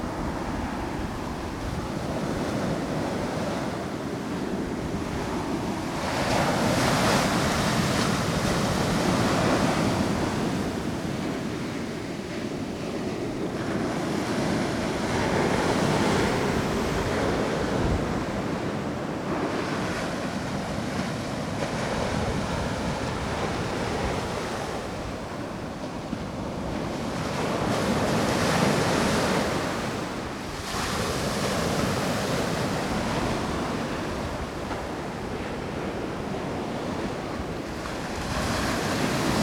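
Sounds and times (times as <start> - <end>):
high tide sea at the seawall: 0.0 - 39.4.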